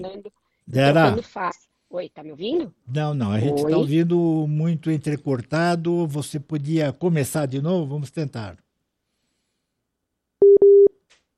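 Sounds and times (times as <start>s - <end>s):
speech: 0.0s - 8.6s
telephone busy tone after a dropped phone call: 10.4s - 10.9s.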